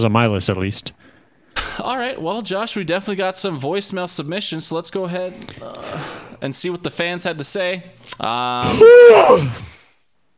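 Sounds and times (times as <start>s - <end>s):
speech: 0.0s - 1.1s, 1.8s - 9.7s
long voiced yawn: 8.6s - 9.8s.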